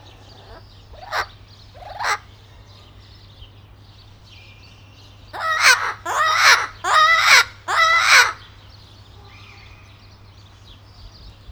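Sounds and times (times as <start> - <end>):
blue-fronted Amazon parrot calling in Nyíregyháza zoo: 0.0 - 2.3, 5.4 - 8.4.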